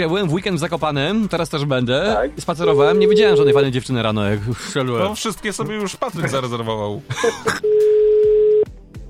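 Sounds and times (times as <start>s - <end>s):
speech: 0.0s - 7.8s
telephone tone as a call is dialed: 2.8s - 3.7s, 7.6s - 8.7s.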